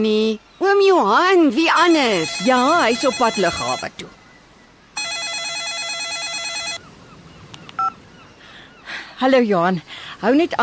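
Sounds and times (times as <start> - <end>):
speech: 0.0 - 4.2, 9.2 - 10.6
telephone ringing with electronic trill: 1.7 - 3.9, 5.0 - 6.8.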